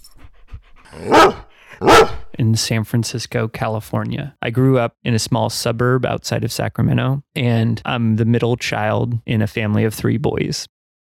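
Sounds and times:
dog panting: 0:00.0 - 0:02.4
dog barking: 0:00.9 - 0:02.3
speech: 0:01.0 - 0:01.4, 0:02.0 - 0:10.8.

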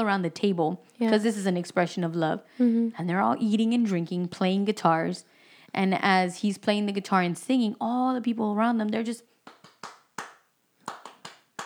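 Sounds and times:
speech: 0:00.0 - 0:09.3
people clapping a double clap in sync: 0:09.5 - 0:11.6.

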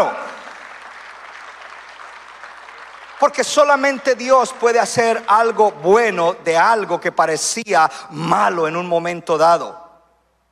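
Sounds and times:
speech: 0:00.0 - 0:00.2, 0:03.2 - 0:09.8
crowd applauding: 0:00.0 - 0:06.2.

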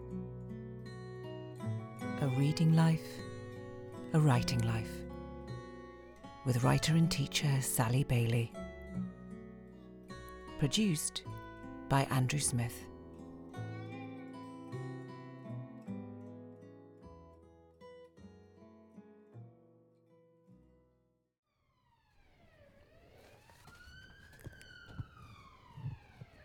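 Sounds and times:
music: 0:00.0 - 0:21.0
speech: 0:02.2 - 0:03.2, 0:04.1 - 0:05.0, 0:06.4 - 0:09.0, 0:10.6 - 0:11.3, 0:11.9 - 0:12.9
emergency vehicle siren passing over Donington Bridge Road: 0:21.7 - 0:26.4.

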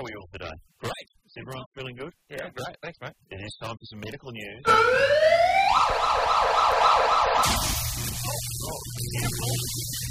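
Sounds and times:
speech: 0:00.0 - 0:10.0
emergency vehicle siren sound effect: 0:04.6 - 0:07.6.

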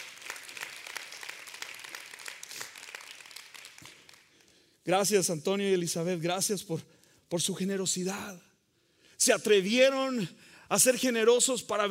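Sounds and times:
roomful of people applauding: 0:00.0 - 0:04.4
speech: 0:04.8 - 0:08.5, 0:09.2 - 0:11.8.

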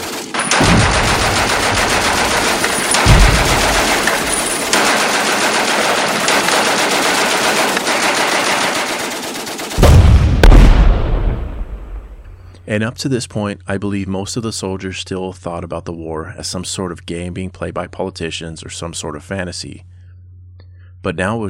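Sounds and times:
machine gun fire in battle: 0:00.0 - 0:12.2
artillery booms in battle: 0:00.4 - 0:05.2, 0:09.8 - 0:12.4
speech: 0:12.7 - 0:20.0, 0:21.0 - 0:21.4.

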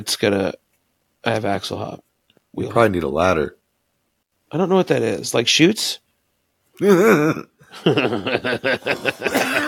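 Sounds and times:
speech: 0:00.0 - 0:00.6, 0:01.2 - 0:03.6, 0:04.5 - 0:06.0, 0:06.8 - 0:09.6
person stifling a cough: 0:06.8 - 0:07.5, 0:09.3 - 0:09.6
laughter: 0:07.7 - 0:09.6.

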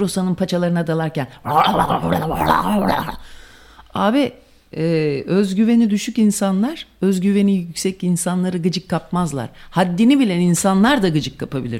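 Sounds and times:
speech: 0:00.0 - 0:11.7
person imitating a dog growling and barking: 0:01.4 - 0:03.3.

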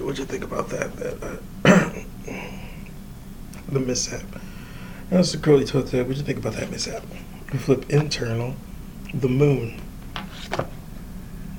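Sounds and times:
speech: 0:00.1 - 0:02.6, 0:03.7 - 0:09.9
single short harsh cough: 0:01.2 - 0:02.5.

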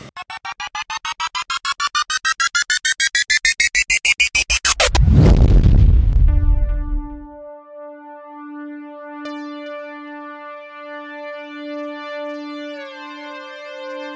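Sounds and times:
cartoonish rapid pulses climbing in pitch: 0:00.2 - 0:07.3
steady tones: 0:04.4 - 0:07.4.

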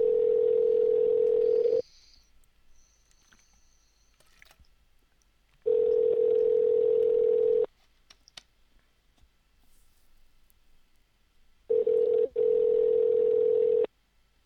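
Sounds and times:
telephone ringing tone on a call: 0:00.0 - 0:01.8, 0:05.7 - 0:07.7, 0:11.7 - 0:13.9.

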